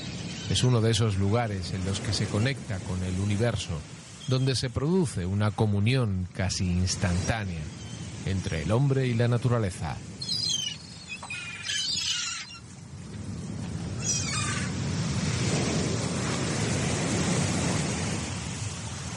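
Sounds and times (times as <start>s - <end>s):
giant Atlantic Ocean waves crashing on a northern beach: 0.0s - 19.1s
wind: 0.0s - 19.1s
speech: 0.5s - 10.1s
high-pitched calls: 10.2s - 12.6s.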